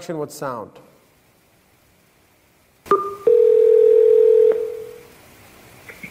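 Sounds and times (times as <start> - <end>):
telephone dialing and ringing tones before a phone call: 2.9 - 5.0.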